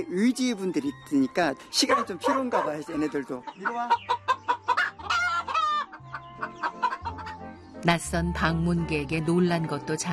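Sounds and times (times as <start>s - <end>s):
speech: 0.0s - 4.2s, 7.8s - 10.1s
chickens clucking and squawking while feeding: 1.8s - 7.8s.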